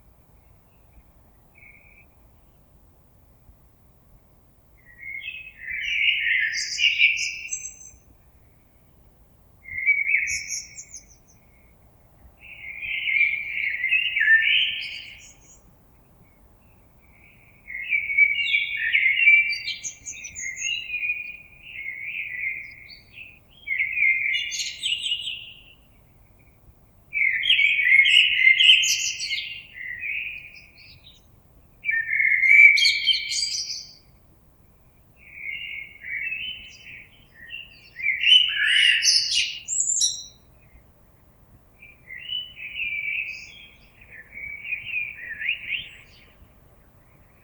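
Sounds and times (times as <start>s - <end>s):
blackbird: 0.0s - 2.7s, 4.8s - 8.9s, 9.6s - 34.2s, 34.9s - 47.4s.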